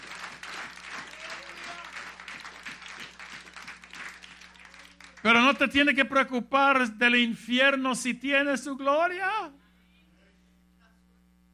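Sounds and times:
church audience applauding: 0:00.0 - 0:05.9
faint hum: 0:00.0 - 0:11.5
speech: 0:05.2 - 0:09.6.

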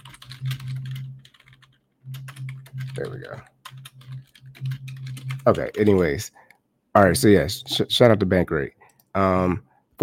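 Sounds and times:
typing on a computer keyboard: 0:00.0 - 0:06.1
steady low hum: 0:00.0 - 0:06.4
speech: 0:03.0 - 0:03.6, 0:05.5 - 0:06.4, 0:07.0 - 0:10.0.

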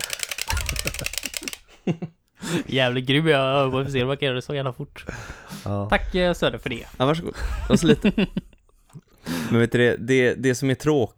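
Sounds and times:
game controller buttons clicking rapidly while playing a video game: 0:00.0 - 0:01.7
laughter: 0:00.0 - 0:04.2, 0:04.8 - 0:09.7
speech: 0:02.7 - 0:08.4, 0:09.5 - 0:11.1.

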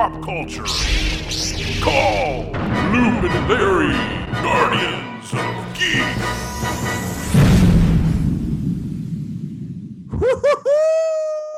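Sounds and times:
speech: 0:00.0 - 0:07.0
explosion sound effect: 0:07.1 - 0:10.5.

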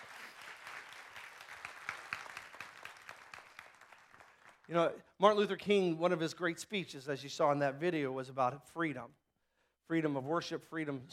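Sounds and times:
audience clapping in praise of the Lord: 0:00.0 - 0:04.9
speech: 0:04.7 - 0:09.2, 0:09.9 - 0:11.1.

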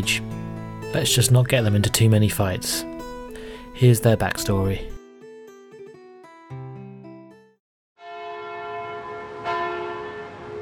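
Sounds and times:
speech: 0:00.0 - 0:00.3, 0:00.9 - 0:02.9, 0:03.8 - 0:04.9
church bell ringing for vespers: 0:08.0 - 0:10.6.

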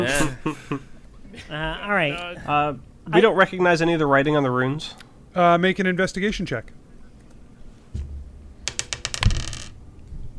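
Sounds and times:
speech: 0:00.0 - 0:06.8
microphone dropped onto a table: 0:08.7 - 0:09.8.

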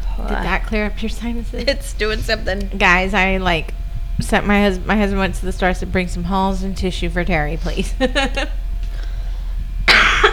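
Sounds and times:
speech: 0:00.2 - 0:08.6
laughter: 0:01.1 - 0:03.6, 0:06.5 - 0:08.6
harsh cough from someone with a cold: 0:09.9 - 0:10.3.

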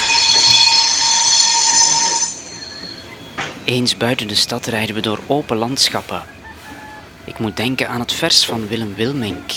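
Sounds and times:
train wheels shrieking in metallic whine: 0:00.0 - 0:03.7
train rolling past on rails: 0:00.0 - 0:06.2
speech: 0:03.7 - 0:06.4, 0:07.3 - 0:09.5.

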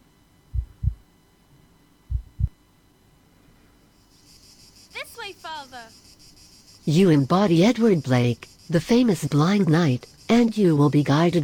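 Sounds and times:
faint hum: 0:00.0 - 0:11.4
deep video game heartbeat sound effect: 0:00.5 - 0:01.1, 0:02.1 - 0:02.6
speech: 0:05.3 - 0:06.0, 0:06.9 - 0:11.4.

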